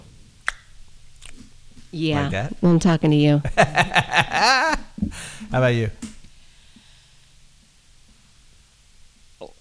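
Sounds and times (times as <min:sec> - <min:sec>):
wet chewing: 0:00.0 - 0:06.5
speech: 0:01.9 - 0:06.1
laughter: 0:02.0 - 0:06.3.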